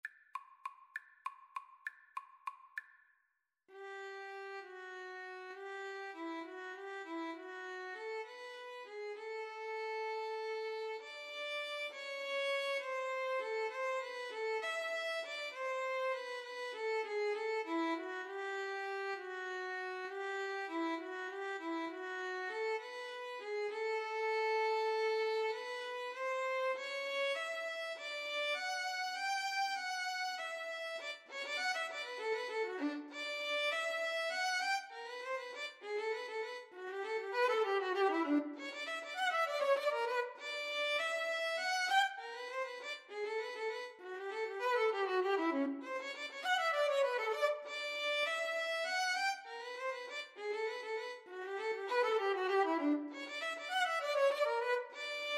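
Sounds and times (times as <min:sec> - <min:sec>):
violin playing in a duet with bass: 0:03.7 - 0:55.3.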